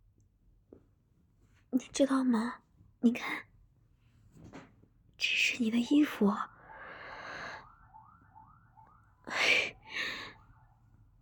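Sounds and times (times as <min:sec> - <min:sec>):
speech: 0:01.7 - 0:03.5, 0:05.2 - 0:06.5
siren wailing outside: 0:06.4 - 0:11.0.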